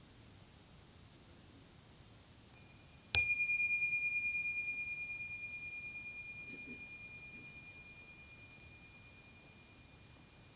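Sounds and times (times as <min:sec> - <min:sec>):
meditation bell ringing: 0:02.6 - 0:10.5.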